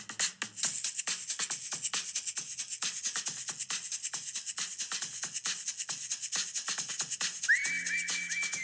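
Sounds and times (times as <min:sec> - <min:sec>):
scratchy rhythmic percussion pattern in a pop song: 0:00.0 - 0:08.6
bright whistled melody in a pop song: 0:07.4 - 0:08.6.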